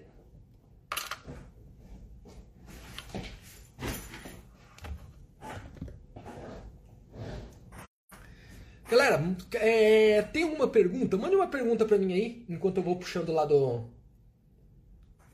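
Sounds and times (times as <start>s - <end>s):
chair dragged out of the way scraping and knocking: 2.6s - 7.9s
speech: 8.9s - 14.0s.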